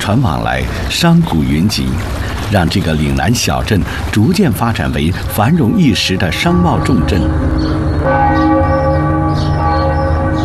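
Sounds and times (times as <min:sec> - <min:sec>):
steady low hum: 0:00.0 - 0:08.1
speech: 0:00.1 - 0:08.2
clock bell ringing in the morning over a riverside town in southern China: 0:06.4 - 0:10.4.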